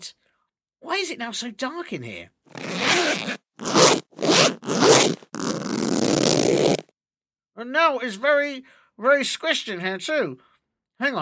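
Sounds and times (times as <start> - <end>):
speech: 0.8 - 3.4, 7.6 - 11.2
zipper being zipped: 2.5 - 6.9.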